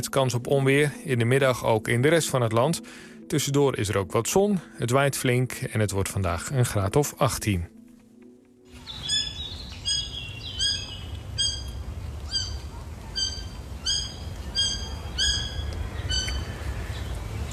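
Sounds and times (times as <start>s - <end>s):
speech: 0.0s - 7.8s
roe deer fawn calling for its mother: 8.7s - 17.1s.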